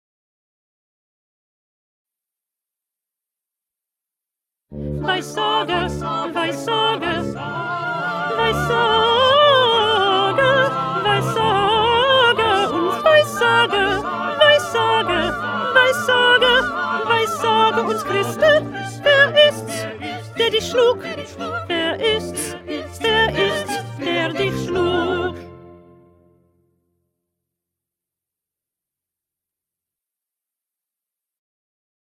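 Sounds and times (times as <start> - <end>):
first alto part: 4.7 - 26.5.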